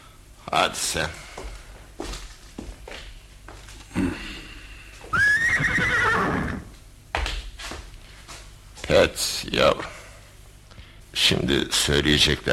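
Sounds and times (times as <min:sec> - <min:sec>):
speech: 0:00.5 - 0:01.2, 0:09.1 - 0:10.0, 0:11.2 - 0:12.5
horse letting out a loud drawn-out whinny: 0:05.1 - 0:06.7.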